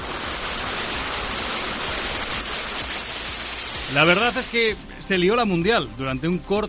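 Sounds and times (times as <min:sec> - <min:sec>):
hail pelting down outdoors in the street: 0:00.0 - 0:05.3
speech: 0:03.9 - 0:06.6.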